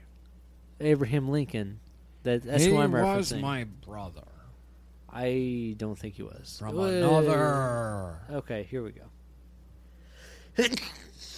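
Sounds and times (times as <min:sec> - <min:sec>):
speech: 0:00.8 - 0:04.3, 0:05.1 - 0:09.2, 0:10.6 - 0:11.0
single quick sneeze: 0:10.4 - 0:11.3.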